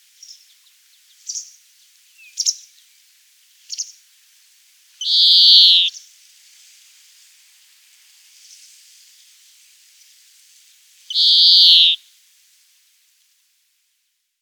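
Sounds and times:
European greenfinch high chirps: 0:05.0 - 0:05.9, 0:11.1 - 0:12.0
European greenfinch buzzy wheezes: 0:11.2 - 0:12.0.

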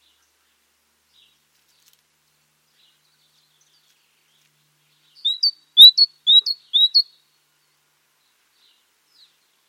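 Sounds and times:
great tit Parus major calling: 0:05.2 - 0:07.0.

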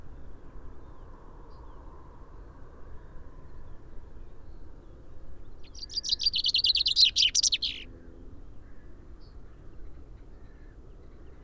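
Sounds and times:
common chaffinch Fringilla coelebs song: 0:05.7 - 0:07.8.

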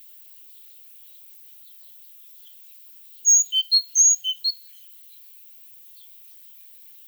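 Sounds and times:
great tit Parus major thin high whistled notes: 0:03.3 - 0:04.6.

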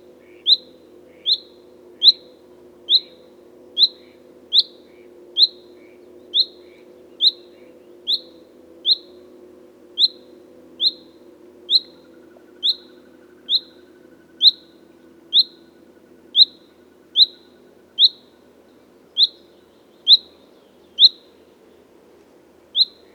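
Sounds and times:
constant low droning background hum: 0:00.0 - 0:23.1
Common chaffinch calling with bright chirps: 0:00.4 - 0:02.2, 0:06.4 - 0:08.3, 0:08.9 - 0:09.1, 0:10.8 - 0:11.1, 0:11.7 - 0:15.8, 0:16.4 - 0:18.3, 0:19.2 - 0:21.8, 0:22.8 - 0:23.1.

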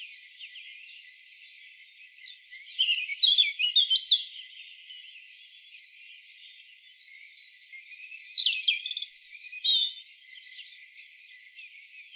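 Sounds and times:
European robin Erithacus rubecula singing: 0:00.4 - 0:04.5, 0:07.8 - 0:10.0.

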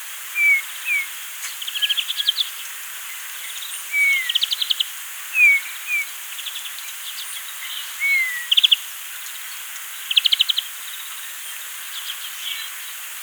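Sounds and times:
Pyrrhula pyrrhula Eurasian bullfinch uttering gentle falling whistles: 0:00.4 - 0:02.3, 0:03.9 - 0:04.8, 0:05.4 - 0:06.1, 0:08.0 - 0:08.8.

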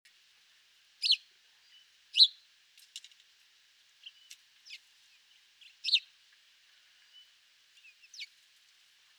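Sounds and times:
House sparrow Passer domesticus giving high chirps: 0:05.8 - 0:06.0.

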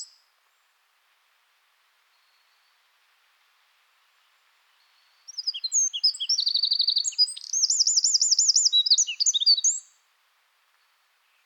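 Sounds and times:
Eurasian wren Troglodytes troglodytes singing: 0:04.8 - 0:10.0.

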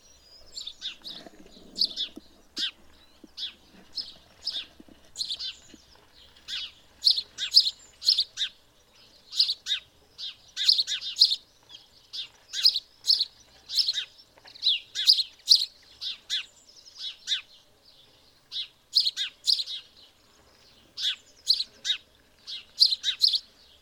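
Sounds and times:
house sparrow giving loud harsh chirps: 0:00.0 - 0:23.7.

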